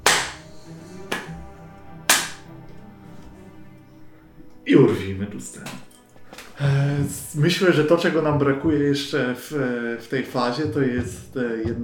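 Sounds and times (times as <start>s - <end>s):
sharp slow hand claps: 0.0s - 3.4s
speech: 4.7s - 5.9s, 6.6s - 11.8s.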